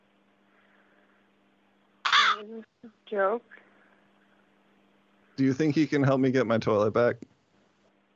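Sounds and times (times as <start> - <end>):
crow cawing inside a room: 2.1 - 2.4
speech: 2.4 - 3.6, 5.4 - 7.3.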